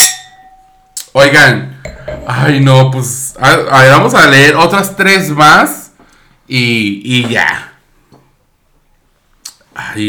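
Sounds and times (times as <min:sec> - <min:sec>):
glasses clinking in a toast: 0:00.0 - 0:01.0, 0:01.8 - 0:03.1
speech: 0:01.2 - 0:01.7, 0:02.3 - 0:05.8, 0:06.5 - 0:07.7, 0:09.9 - 0:10.0.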